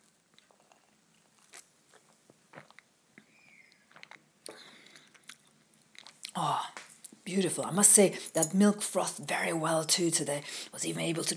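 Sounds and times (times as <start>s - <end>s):
person sipping a flat white coffee: 0.4s - 2.9s, 3.5s - 6.4s
speech: 7.3s - 11.3s.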